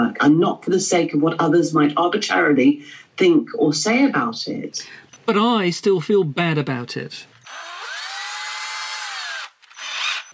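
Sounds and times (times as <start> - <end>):
speech: 0.1 - 7.3
power drill whining: 7.4 - 10.3.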